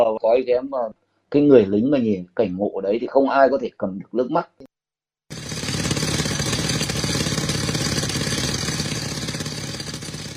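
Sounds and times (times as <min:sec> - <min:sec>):
speech: 0:00.0 - 0:04.6
concrete drill hammering into rock with rattling engine drone: 0:05.3 - 0:10.3.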